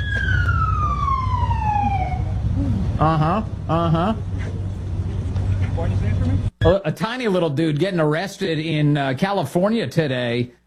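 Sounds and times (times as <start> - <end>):
police siren during an arrest: 0.0 - 2.6
speech: 3.0 - 4.6, 5.8 - 10.6.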